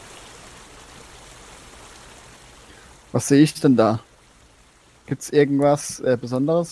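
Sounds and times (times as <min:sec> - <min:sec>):
small forest brook flowing: 0:00.0 - 0:06.6
speech: 0:03.1 - 0:04.1, 0:05.1 - 0:06.7.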